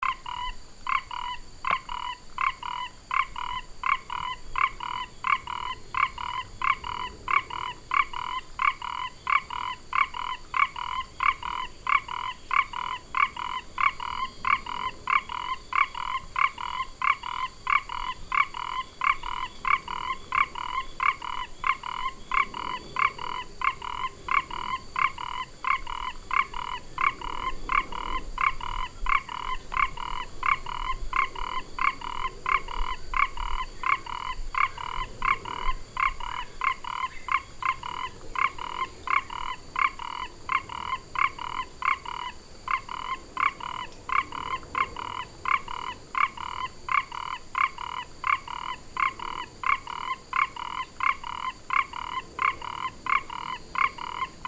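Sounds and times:
Ingerophrynus quadriporcatus calling: 0:00.0 - 0:54.4.

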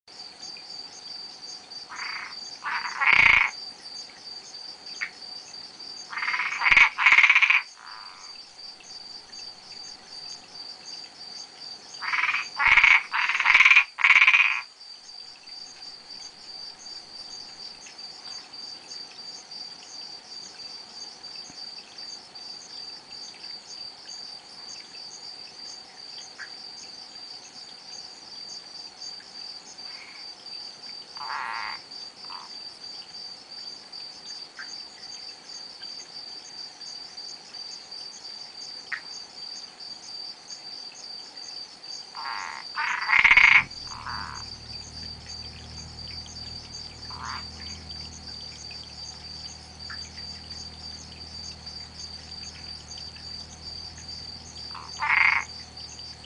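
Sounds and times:
Boana albopunctata frog calling: 0:01.9 - 0:03.6, 0:06.1 - 0:08.4, 0:12.0 - 0:14.7, 0:31.2 - 0:32.6, 0:42.1 - 0:56.2.

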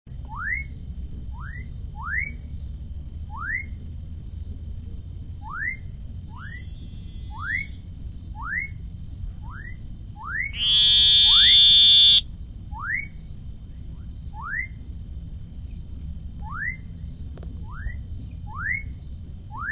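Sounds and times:
Elachistocleis ovalis frog calling: 0:10.6 - 0:12.2.

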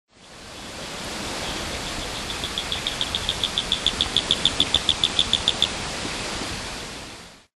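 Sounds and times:
Boophis majori: 0:00.2 - 0:05.8.

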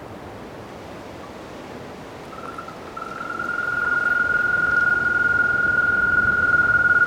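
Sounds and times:
faint background hiss: 0:00.0 - 0:07.0
African green toad Bufotes boulengeri trilling: 0:02.4 - 0:07.0.

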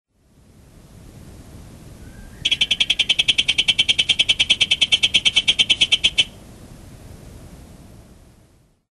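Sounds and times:
Heterixalus boettgeri: 0:02.4 - 0:06.4.

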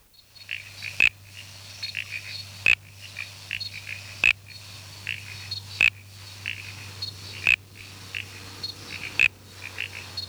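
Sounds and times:
steady low hum: 0:00.0 - 0:10.2
Uperoleia mimula toadlet calls: 0:00.2 - 0:10.2.

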